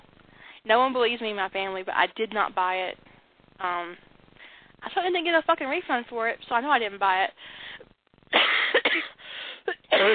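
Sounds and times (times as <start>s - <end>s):
speech: 0.6s - 4.1s, 4.8s - 7.3s
harsh raspy coughing: 8.4s - 10.1s.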